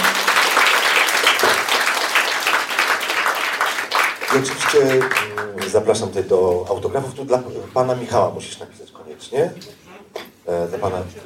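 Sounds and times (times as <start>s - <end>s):
audience applauding a guest at the end of a meeting: 0.0s - 6.0s
speech: 4.4s - 9.8s, 10.5s - 11.2s.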